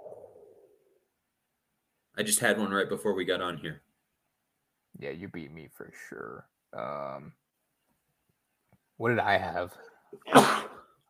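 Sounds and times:
speech: 2.2s - 3.9s, 5.0s - 7.4s, 9.0s - 10.7s
sharp breathy sneeze: 10.2s - 10.9s.

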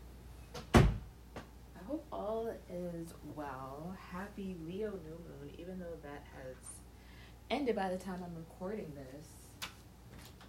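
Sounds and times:
person closing a door: 0.5s - 1.5s
speech: 2.4s - 6.8s, 7.5s - 9.4s.

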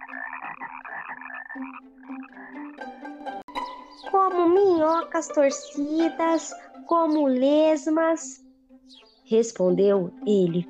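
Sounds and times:
frog croaking: 0.0s - 2.9s
speech: 1.6s - 1.9s, 4.0s - 8.4s, 9.3s - 10.6s.

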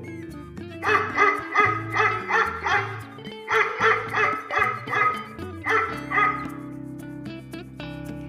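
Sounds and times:
musical backing with a moving low line: 0.0s - 8.2s
dog barking: 0.8s - 6.6s.

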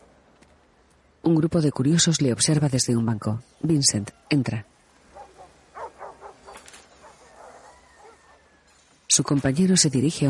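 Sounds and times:
speech: 1.3s - 4.8s, 9.2s - 10.2s
dogs barking and yipping at a dog-fighting pen lined with cages: 5.0s - 9.0s.

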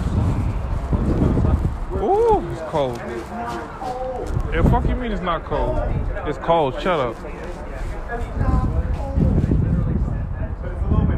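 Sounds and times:
cold outdoor wind buffeting the microphone: 0.0s - 11.1s
speech: 2.7s - 7.4s.

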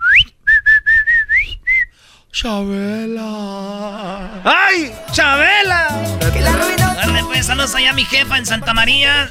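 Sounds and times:
person whistling a call: 0.0s - 2.0s
speech: 2.4s - 6.8s, 7.4s - 9.2s.

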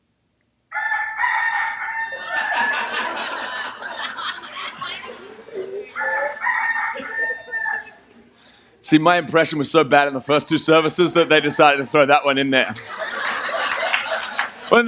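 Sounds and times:
rooster crowing: 0.7s - 4.4s, 5.9s - 8.0s
laughter: 2.1s - 8.0s, 9.5s - 14.8s
speech: 8.9s - 13.0s.

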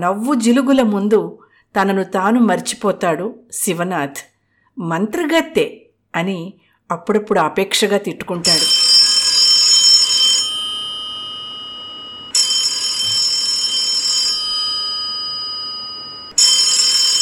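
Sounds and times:
speech: 0.0s - 8.7s
landline telephone ringing with electronic trills: 8.5s - 17.1s.

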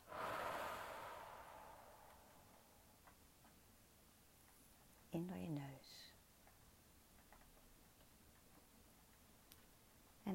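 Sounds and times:
breathy exhale through the mouth: 0.0s - 2.6s.

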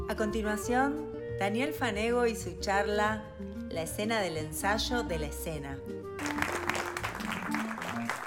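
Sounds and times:
speech: 0.2s - 5.9s
audience clapping: 6.2s - 8.2s.

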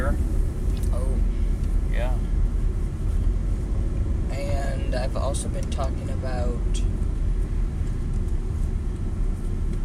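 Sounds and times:
road noise inside a moving car: 0.0s - 9.8s
speech: 5.3s - 7.0s.

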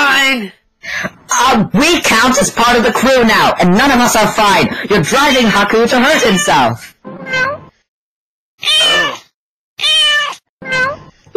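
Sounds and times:
speech: 0.3s - 7.6s
angry cat yowling with strained meows: 8.6s - 11.1s.

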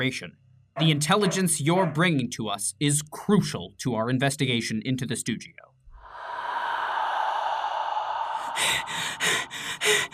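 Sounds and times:
speech: 0.0s - 5.7s
man panting out of breath: 6.3s - 10.1s.

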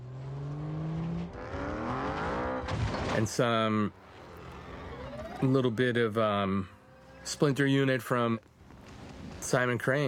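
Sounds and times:
motorcycle engine revving and accelerating: 0.0s - 2.7s, 4.0s - 5.9s
speech: 3.2s - 4.0s, 5.4s - 8.5s, 9.5s - 10.0s.

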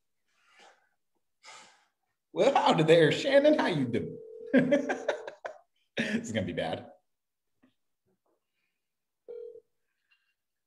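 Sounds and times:
speech: 2.4s - 5.3s, 6.2s - 7.0s
loud steady phone ringback tone: 4.2s - 4.6s, 9.3s - 9.7s
laughter: 4.5s - 6.3s.

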